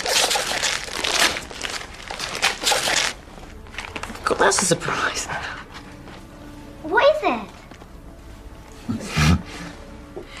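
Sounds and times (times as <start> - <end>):
wrapping paper on a gift ripping and crinkling as it is torn open: 0.0 - 4.4
speech: 4.4 - 5.6, 6.9 - 7.5.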